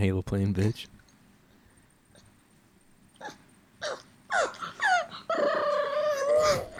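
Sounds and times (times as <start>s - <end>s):
pug whimpering and grunting yelps: 3.2s - 6.7s.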